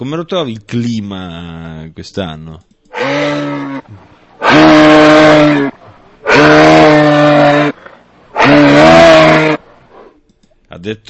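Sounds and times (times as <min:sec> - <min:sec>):
speech: 0:00.0 - 0:05.7, 0:10.8 - 0:11.0
moose calls as deep drawn-out bellows: 0:02.9 - 0:09.6.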